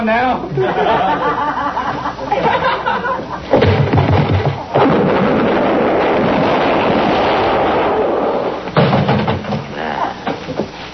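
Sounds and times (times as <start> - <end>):
laughter: 0.4 - 3.6
loud booming gunshots in a shootout: 3.5 - 9.6.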